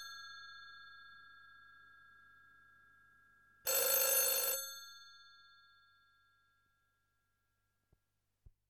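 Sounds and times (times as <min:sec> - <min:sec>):
telephone ringing: 0:03.7 - 0:04.6.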